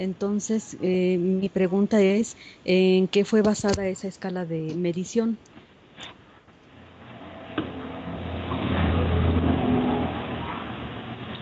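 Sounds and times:
speech: 0.0s - 6.2s
cars passing outside: 7.0s - 11.4s.

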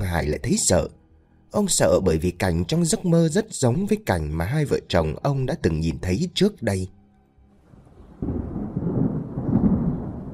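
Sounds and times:
speech: 0.1s - 7.0s
thunderclap rumbling before a rain shower: 7.7s - 10.3s.

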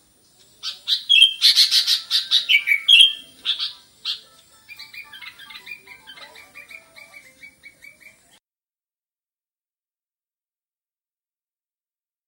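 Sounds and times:
sooty-headed bulbul singing vigorously: 0.6s - 8.2s.

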